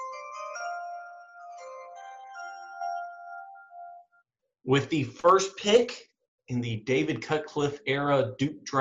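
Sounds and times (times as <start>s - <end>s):
bright ringing chime jingle as draft pick sound bite: 0.0s - 4.3s
speech: 4.6s - 8.7s.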